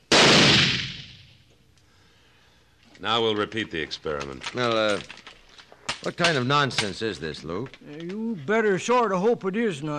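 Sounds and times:
old powder-charged blunderbuss firing into sandstone rock by a mine shaft opening: 0.0s - 1.4s
speech: 3.0s - 5.2s, 6.0s - 9.9s.

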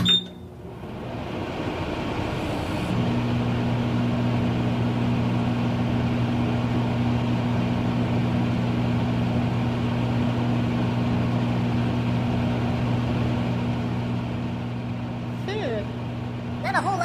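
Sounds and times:
microwave oven beep: 0.0s - 0.6s
microwave oven electrical hum and fan whirring: 0.0s - 17.0s.

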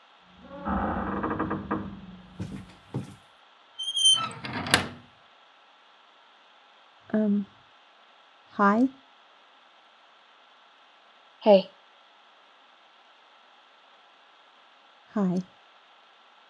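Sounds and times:
clunks and thumps: 0.4s - 3.2s
door creaking open as someone comes in: 0.4s - 3.2s, 3.8s - 5.1s
speech: 7.2s - 7.5s, 8.6s - 9.0s, 11.4s - 11.8s, 15.2s - 15.6s.

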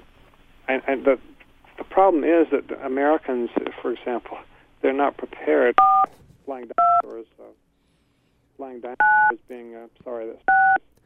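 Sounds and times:
speech: 0.7s - 1.4s, 2.0s - 7.6s, 8.6s - 10.9s
telephone keypad tones dialing out on an extension: 10.5s - 10.8s.

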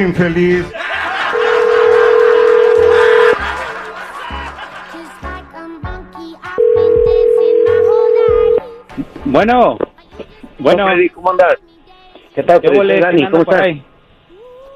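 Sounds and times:
speech: 0.0s - 0.8s, 9.3s - 9.8s, 10.6s - 11.7s, 12.4s - 13.9s
laughter: 0.7s - 2.5s, 3.4s - 5.3s
telephone dialing and line tones: 1.3s - 3.4s, 6.6s - 8.6s.

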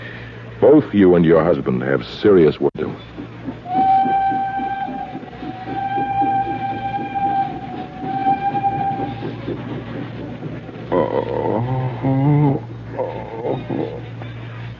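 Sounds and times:
departing train rumbling and clattering: 0.0s - 14.7s
speech: 0.6s - 3.2s
train horn blasts: 3.7s - 9.3s.

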